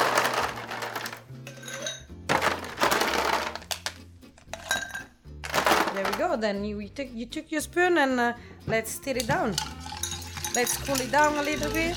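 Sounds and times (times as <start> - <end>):
ice cubes dropping into mixing glasses for a chocolate-flavoured drink: 0.0 - 3.9, 4.5 - 6.2, 9.5 - 11.9
speech: 6.3 - 9.7, 10.6 - 11.9.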